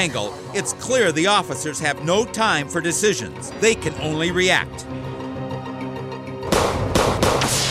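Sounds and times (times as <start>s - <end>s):
speech: 0.0s - 5.0s
rapid burst of police gunfire: 6.5s - 7.6s.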